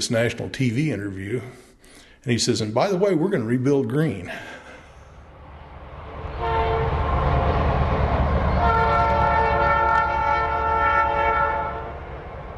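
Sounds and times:
speech: 0.0 - 4.6
freight train rumbling past on a prairie line at Greensburg: 4.6 - 12.5
freight train horn blowing a long chord: 6.4 - 7.1, 8.5 - 12.1.

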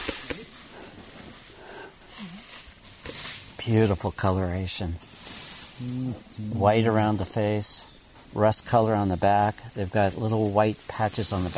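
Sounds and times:
tiger wheezing in short breathy rasps: 0.0 - 2.5
steady hiss of outdoor noise: 0.0 - 11.5
speech: 3.6 - 5.1, 5.8 - 11.5.

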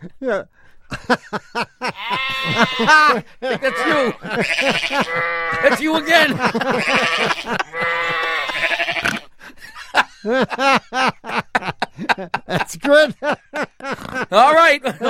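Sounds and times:
speech: 0.2 - 8.3, 10.2 - 15.0
laughter: 0.9 - 15.0
flock of sheep bleating: 1.9 - 9.3.

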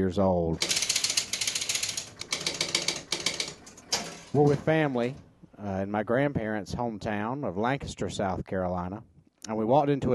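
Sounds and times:
speech: 0.0 - 0.8, 4.3 - 10.1
electromechanical pinball machine starting up in a department store: 0.6 - 5.3.

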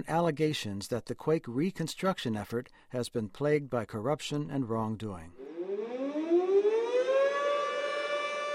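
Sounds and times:
speech: 0.0 - 5.4
air raid siren winding up in a rising wail: 5.4 - 8.5.

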